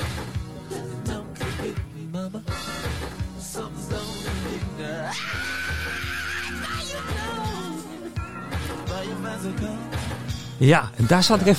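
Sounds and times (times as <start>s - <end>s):
loud song with steady pounding drums and bass: 0.0s - 10.6s
long strained scream in a song: 5.0s - 7.4s
speech: 9.4s - 11.5s.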